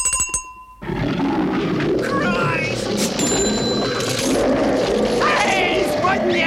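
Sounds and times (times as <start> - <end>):
bell jingle: 0.0 - 0.8, 3.2 - 4.3
Bengal tiger roaring: 0.8 - 6.4.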